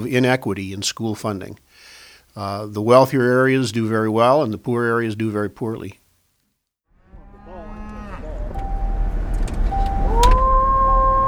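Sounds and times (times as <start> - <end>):
part-time farmer calling his cows on an Illinois farm: 0.0 - 1.7, 2.3 - 6.0, 7.4 - 8.4
speech: 0.0 - 6.0
cattle mooing on an Illinois farm: 7.0 - 8.8
low rumble: 7.0 - 11.2.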